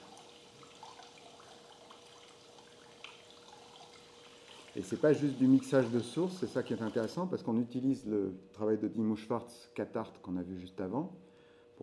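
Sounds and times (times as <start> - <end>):
flowing water rushing: 0.0 - 7.1
speech: 4.8 - 11.8.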